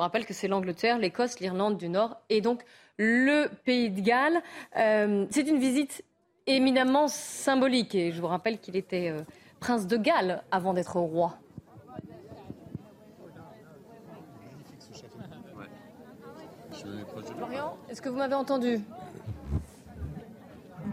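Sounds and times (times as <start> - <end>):
speech: 0.0 - 11.4, 17.4 - 19.0
dense crowd at a royal visit in Cardiff murmuring and chattering: 8.9 - 20.9.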